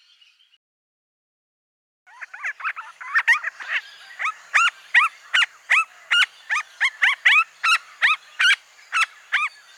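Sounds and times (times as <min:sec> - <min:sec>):
silver-crowned friarbird calling: 0:02.1 - 0:09.7.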